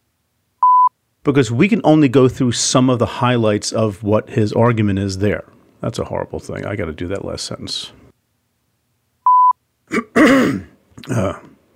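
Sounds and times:
brief electronic beep: 0:00.6 - 0:00.9, 0:09.2 - 0:09.6
speech: 0:01.2 - 0:08.0, 0:09.9 - 0:11.5
congested man clearing his throat: 0:09.9 - 0:11.6.

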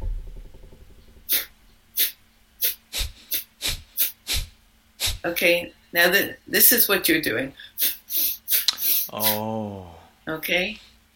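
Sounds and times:
faint low hum: 0:00.0 - 0:11.1
forceful puffs of air blown through the nose in a breathing exercise: 0:01.3 - 0:05.3, 0:07.8 - 0:09.4
speech: 0:05.2 - 0:07.6, 0:09.1 - 0:10.8.

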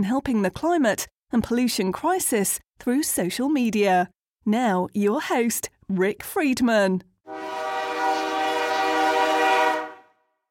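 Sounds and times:
speech: 0:00.0 - 0:07.6
loud train horn blaring: 0:07.3 - 0:10.3.

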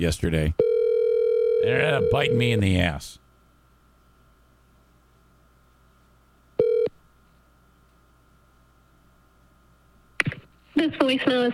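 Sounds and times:
speech: 0:00.0 - 0:00.6, 0:01.6 - 0:03.2, 0:10.8 - 0:11.5
short electronic telephone tone beeping as a call is placed: 0:00.6 - 0:02.6, 0:06.6 - 0:06.9.

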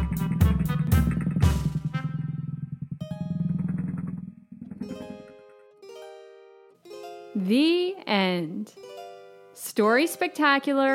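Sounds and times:
small motor scooter revving and riding off: 0:00.0 - 0:05.4
speech: 0:07.4 - 0:08.8, 0:09.6 - 0:10.9.

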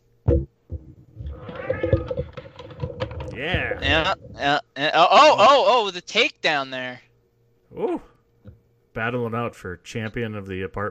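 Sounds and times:
scraping and thumping of cats fighting: 0:00.3 - 0:04.5
cats yowling and meowing in a fight in an apartment: 0:01.3 - 0:02.3
speech: 0:03.4 - 0:07.1, 0:09.0 - 0:10.9.

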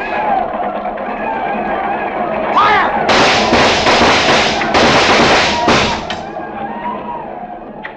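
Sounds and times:
voices shouting: 0:00.0 - 0:07.7
gunfire volley in a frontier battle against mounted attackers: 0:02.9 - 0:06.3.

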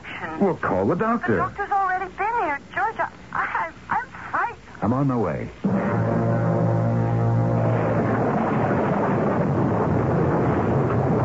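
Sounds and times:
speech: 0:00.2 - 0:03.2, 0:04.8 - 0:06.3
rolling thunder: 0:05.7 - 0:11.2
heavy wind and rain: 0:07.8 - 0:11.2.

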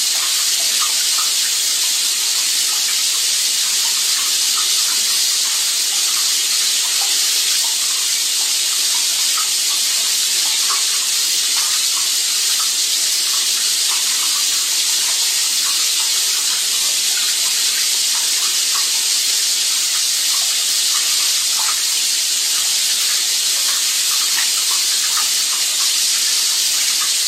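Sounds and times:
shower running: 0:00.0 - 0:27.2.

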